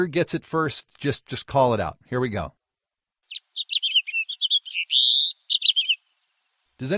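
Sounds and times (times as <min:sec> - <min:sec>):
speech: 0:00.0 - 0:02.6, 0:06.8 - 0:06.9
house finch singing: 0:03.3 - 0:06.0.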